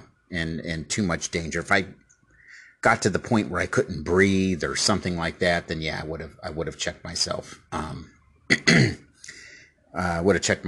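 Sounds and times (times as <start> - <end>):
speech: 0.3 - 2.0, 2.8 - 9.0, 10.0 - 10.6
person clearing throat: 8.5 - 9.1.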